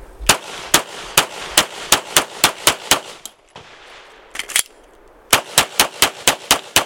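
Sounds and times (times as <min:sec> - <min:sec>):
pistol shots fired at targets during a shooting drill: 0:00.3 - 0:03.8, 0:05.3 - 0:06.8.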